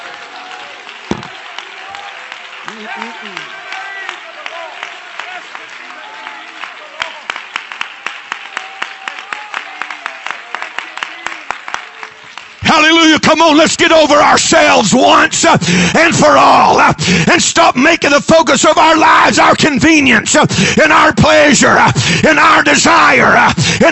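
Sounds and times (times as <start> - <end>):
rhythmic group clapping: 0.0 - 13.6
crowd shouting and cheering: 0.0 - 17.2, 17.8 - 23.9
speech: 2.7 - 3.6, 12.7 - 23.9.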